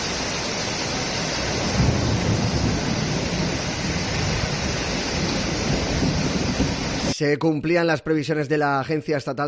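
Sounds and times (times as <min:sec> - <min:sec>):
heavy thunderstorm downpour at night: 0:00.0 - 0:07.3
speech: 0:07.2 - 0:09.4.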